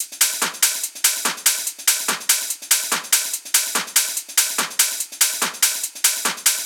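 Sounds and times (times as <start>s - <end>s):
techno groove loop: 0.0s - 6.6s.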